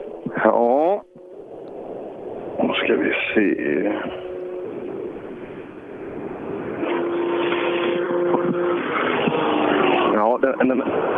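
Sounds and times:
rally car engine roaring at the finish of a stage: 0.0s - 11.1s
speech: 0.3s - 1.1s, 2.7s - 4.3s.

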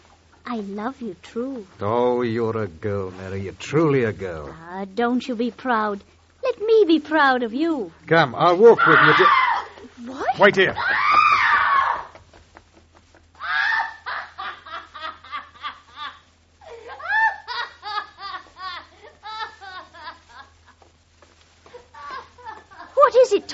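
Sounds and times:
low steady hum: 0.0s - 23.5s
speech: 0.5s - 6.2s, 6.8s - 9.4s, 10.0s - 11.3s
high shrill laugh-like shrieks and cries: 8.7s - 9.9s, 10.7s - 12.2s, 13.4s - 14.4s
woman screaming loudly: 8.7s - 12.2s, 13.4s - 14.3s.

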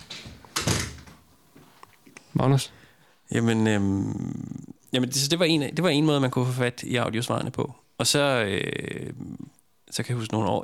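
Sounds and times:
door swinging shut as someone leaves the room: 0.0s - 1.2s
speech: 2.4s - 10.6s.

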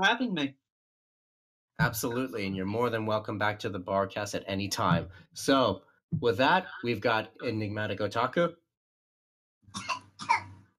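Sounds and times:
speech: 0.0s - 0.6s, 1.8s - 8.6s
person coughing: 9.8s - 10.6s.

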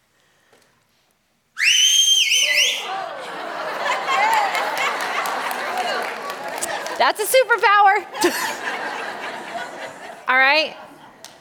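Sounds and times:
person whistling a short bright wavering tune: 1.6s - 2.9s
small group laughing: 2.8s - 11.3s
speech: 7.0s - 8.9s, 10.3s - 10.8s.

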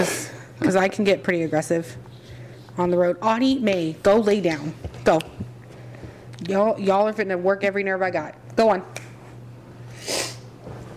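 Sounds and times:
speech: 0.0s - 2.2s, 2.8s - 5.4s, 6.4s - 9.0s
steady low electrical hum: 0.0s - 10.9s
short breathy sniff through the nose: 9.9s - 10.4s.

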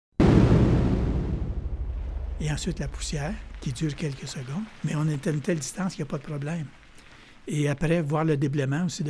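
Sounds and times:
dynamite blast explosion in a mine: 0.1s - 5.3s
speech: 2.4s - 6.8s, 7.4s - 9.0s.

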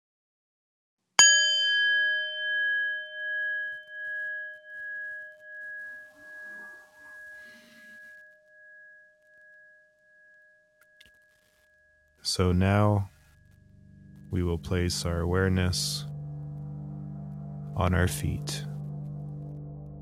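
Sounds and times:
meditation bell ringing: 1.2s - 16.1s
speech: 12.4s - 13.1s, 14.3s - 16.1s, 17.8s - 18.7s.

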